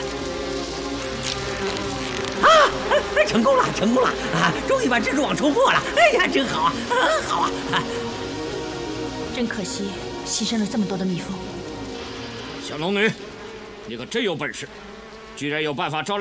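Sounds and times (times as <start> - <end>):
large swarm of bees buzzing: 0.0 - 16.1
laughter: 2.4 - 8.1.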